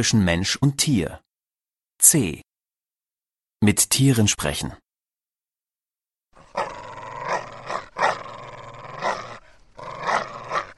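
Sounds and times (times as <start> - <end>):
speech: 0.0 - 1.2, 2.0 - 2.5, 3.6 - 4.8
dog growling in warning: 6.4 - 10.7.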